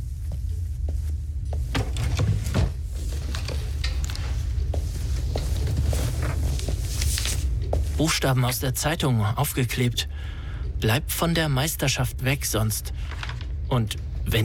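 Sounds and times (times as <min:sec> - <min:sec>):
steady low hum: 0:00.0 - 0:14.4
drawer sliding open with a scraping rumble: 0:01.7 - 0:04.3
rustle of letters being taken out of a drawer: 0:01.7 - 0:07.9, 0:13.0 - 0:13.5
speech: 0:08.0 - 0:14.4.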